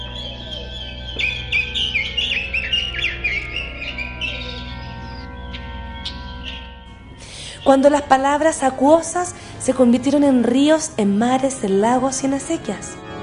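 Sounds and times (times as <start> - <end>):
birds chirping: 0.0 - 10.4
speech: 7.7 - 13.0.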